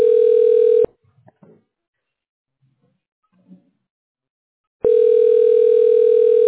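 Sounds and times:
telephone call ringback tone: 0.0s - 0.9s, 4.8s - 6.4s.

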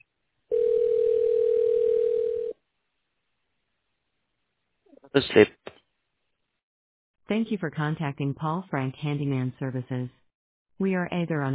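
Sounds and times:
telephone ringing with electronic tone: 0.5s - 2.6s
speech: 5.1s - 5.7s, 7.3s - 10.2s, 10.8s - 11.5s.

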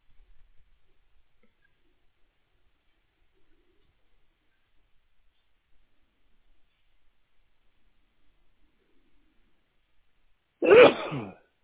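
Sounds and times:
person sneezing: 10.6s - 11.4s.

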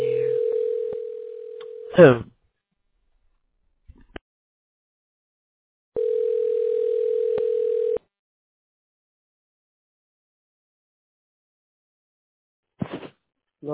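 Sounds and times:
electronic phone ringing tone heard down a phone line: 0.0s - 2.0s, 6.0s - 8.0s
speech: 2.0s - 2.3s.

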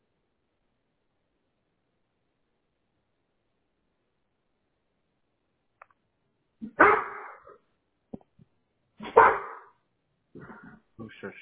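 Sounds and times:
dog barking: 6.6s - 7.6s, 9.0s - 9.8s.

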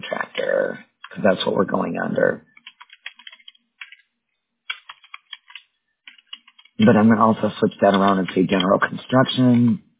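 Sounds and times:
speech: 1.2s - 2.5s, 6.8s - 9.8s
typing on a computer keyboard: 2.5s - 4.1s, 4.7s - 6.8s, 7.7s - 8.9s.

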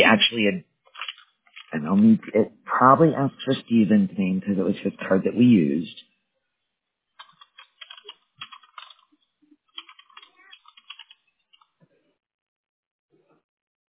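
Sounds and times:
speech: 0.0s - 0.7s, 1.7s - 6.0s
typing on a computer keyboard during a phone call: 0.9s - 1.7s, 7.2s - 11.7s.

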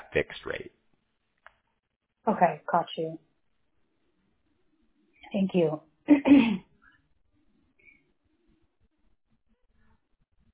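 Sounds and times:
speech: 0.1s - 0.7s, 2.3s - 3.3s, 5.3s - 6.7s
person coughing: 6.1s - 6.6s.

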